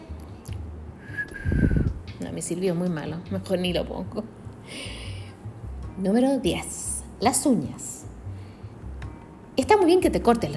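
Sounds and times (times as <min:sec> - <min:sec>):
person whistling a note: 0:01.0 - 0:02.0
low rumbling noise: 0:01.1 - 0:02.1
speech: 0:02.2 - 0:05.0, 0:06.0 - 0:07.9, 0:09.6 - 0:10.5.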